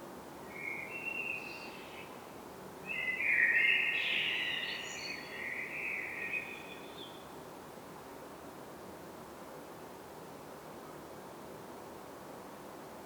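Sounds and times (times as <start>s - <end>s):
common blackbird song, Turdus merula: 0.5s - 2.1s, 2.9s - 7.2s.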